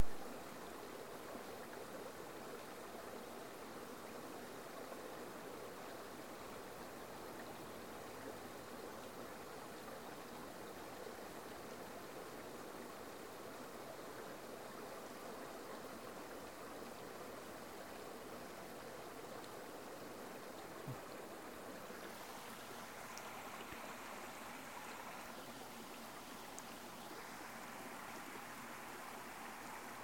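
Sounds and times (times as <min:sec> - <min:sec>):
river in the Peak District: 0:00.0 - 0:30.0.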